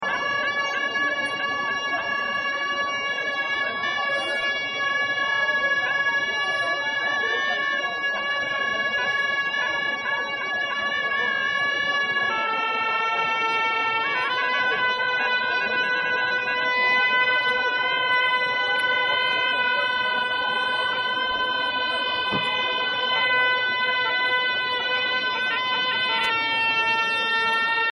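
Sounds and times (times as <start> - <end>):
monks playing horns at Losar: 0.0 - 27.9.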